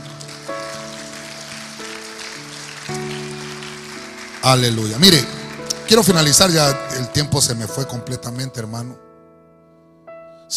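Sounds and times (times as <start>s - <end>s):
church audience clapping hands during a sermon: 0.0s - 6.9s
speech: 4.4s - 9.1s.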